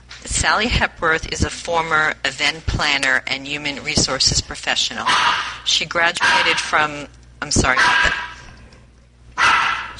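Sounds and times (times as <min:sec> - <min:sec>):
speech: 0:00.3 - 0:08.3
dog barking in sharp yelping barks: 0:05.0 - 0:05.6, 0:06.2 - 0:06.7, 0:07.8 - 0:08.5, 0:09.4 - 0:09.9.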